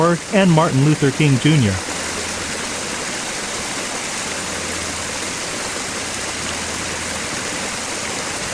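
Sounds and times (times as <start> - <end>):
speech: 0.0 - 1.9
water pouring over a memorial reflecting pool wall: 0.0 - 8.5.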